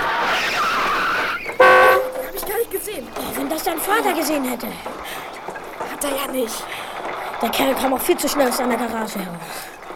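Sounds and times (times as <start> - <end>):
car tires skidding with shrill wavering squeal: 0.0 - 2.4
speech: 3.0 - 5.2, 6.0 - 6.8, 7.4 - 9.8.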